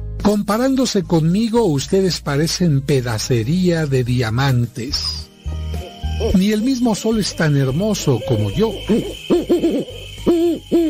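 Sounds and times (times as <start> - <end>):
speech: 0.2 - 5.3, 6.2 - 10.8
owl hooting: 5.7 - 6.4, 7.3 - 10.8.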